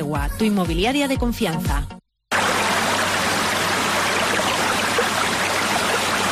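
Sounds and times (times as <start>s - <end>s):
speech: 0.1s - 2.0s
water flowing from a spring: 2.3s - 6.3s.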